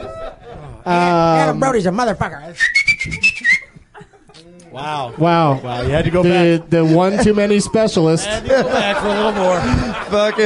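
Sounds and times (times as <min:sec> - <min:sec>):
laughter: 0:00.0 - 0:01.1, 0:03.2 - 0:10.4
speech: 0:00.8 - 0:03.4, 0:04.8 - 0:10.4
person whistling a short bright wavering note: 0:02.6 - 0:03.8.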